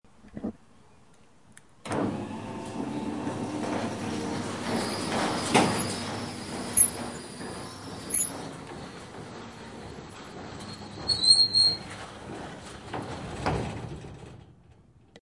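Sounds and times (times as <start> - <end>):
automatic garage roller door: 1.8 - 15.1.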